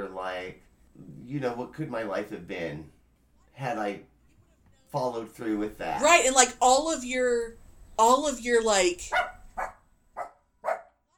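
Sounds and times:
speech: 0.0s - 3.0s, 3.6s - 4.1s, 4.9s - 9.3s
small puppy yapping: 9.1s - 10.9s.

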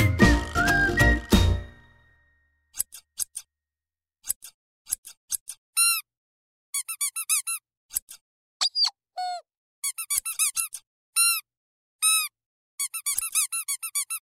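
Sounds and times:
squeaky toy being squeezed: 0.2s - 1.8s, 5.4s - 6.1s, 6.8s - 8.1s, 8.6s - 11.5s, 12.0s - 14.2s.

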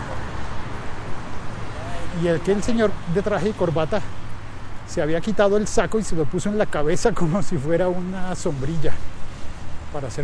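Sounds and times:
dense traffic rumble echoing under a road bridge in a city: 0.0s - 10.2s
speech: 2.2s - 4.2s, 4.9s - 9.1s, 9.9s - 10.2s.

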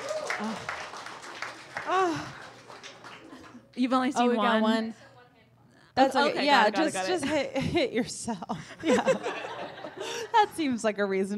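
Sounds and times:
person whooping: 0.0s - 0.8s, 1.8s - 2.5s
scattered light applause from a small audience: 0.0s - 3.8s
speech: 0.4s - 0.8s, 3.8s - 5.0s, 6.0s - 9.4s, 10.4s - 11.3s
laughter: 8.8s - 10.5s.

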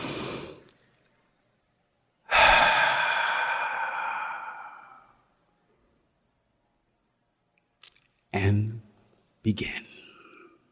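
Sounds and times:
deep breath and long sigh-like exhale: 0.0s - 0.6s, 2.3s - 5.2s
speech: 8.4s - 8.8s, 9.4s - 9.9s.

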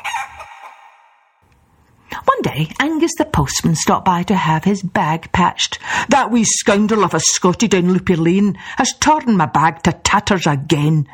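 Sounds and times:
rooster crowing: 0.0s - 1.2s
speech: 2.5s - 11.1s.

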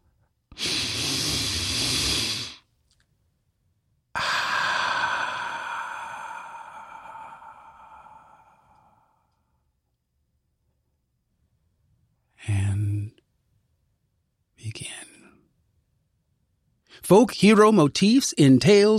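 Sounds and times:
slow deep breath: 0.1s - 2.7s, 4.1s - 9.7s
speech: 17.1s - 18.9s.

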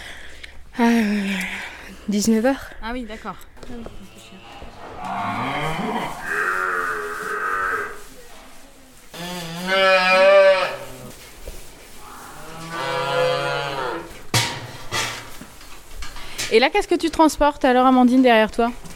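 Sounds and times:
speech: 0.8s - 4.1s, 16.5s - 18.9s
water buffaloes mooing on a farm at milking time: 4.0s - 8.0s, 9.2s - 11.2s, 12.0s - 14.2s.

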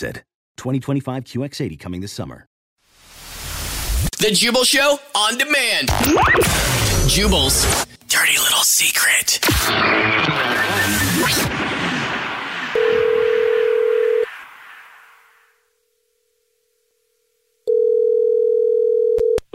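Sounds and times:
speech: 0.0s - 2.5s, 4.2s - 11.8s
telephone line tones as a call is placed: 12.8s - 14.3s, 17.7s - 19.4s.

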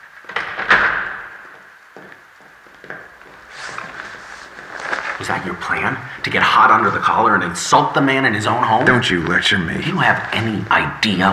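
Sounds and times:
door swinging and shutting with a solid thud: 0.3s - 1.4s
speech: 5.2s - 11.3s.

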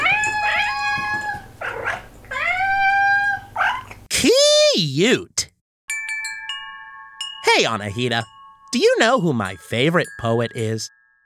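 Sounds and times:
puppy howling and whimpering: 0.0s - 4.1s
speech: 4.9s - 5.4s, 7.6s - 11.0s.

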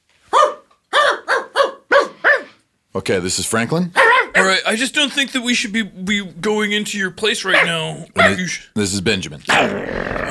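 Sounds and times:
dog barking: 0.3s - 2.6s, 4.0s - 4.5s, 7.5s - 8.5s
speech: 2.9s - 10.3s.

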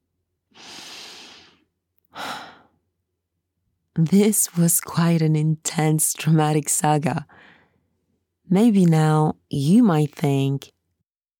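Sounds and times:
big deep breath: 0.5s - 2.7s, 7.3s - 7.8s
speech: 4.0s - 7.6s, 8.5s - 10.8s.

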